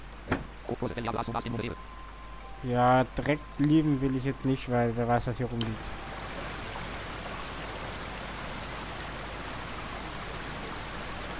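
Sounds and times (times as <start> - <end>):
speech: 0.7 - 6.0
running water: 5.6 - 11.3.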